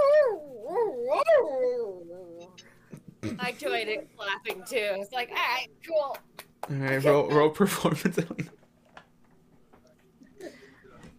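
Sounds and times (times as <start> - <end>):
human voice imitating a howl during a tabletop role-playing game: 0.0 - 2.5
speech: 3.3 - 8.6.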